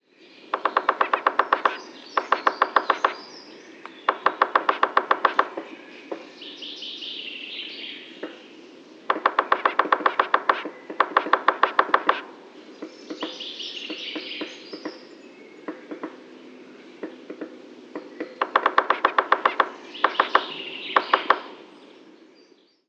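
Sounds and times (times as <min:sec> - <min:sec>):
Picoides tridactylus drumming: 0:00.4 - 0:06.4, 0:08.2 - 0:22.0.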